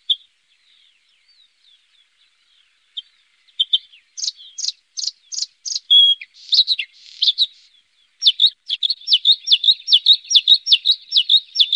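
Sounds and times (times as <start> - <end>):
bluethroat song: 0.0 - 11.7.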